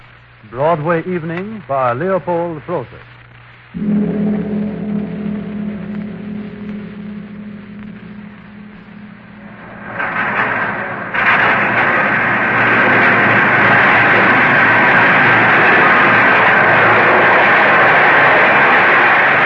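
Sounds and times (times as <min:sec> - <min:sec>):
speech: 0:00.4 - 0:03.1, 0:03.7 - 0:04.4
subway train rumbling at a station platform: 0:03.8 - 0:19.4.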